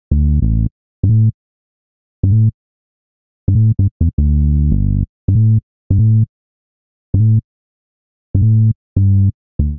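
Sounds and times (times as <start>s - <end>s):
bassline in A minor: 0.1s - 1.4s, 2.2s - 2.6s, 3.5s - 6.3s, 7.2s - 7.4s, 8.3s - 9.7s.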